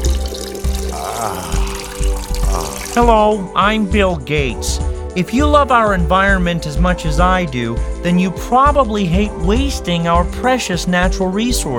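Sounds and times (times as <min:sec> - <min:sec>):
water poured into a glass: 0:00.0 - 0:03.1
speech: 0:03.0 - 0:11.7.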